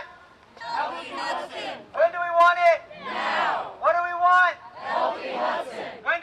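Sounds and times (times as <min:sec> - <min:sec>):
crowd of protesters chanting outside a hotel: 0:00.6 - 0:02.0, 0:02.8 - 0:03.9, 0:04.5 - 0:06.1.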